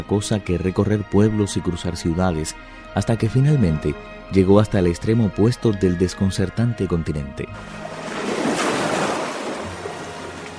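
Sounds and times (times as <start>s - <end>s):
speech: 0.0s - 7.9s
ocean waves washing onto the shore: 7.7s - 10.5s.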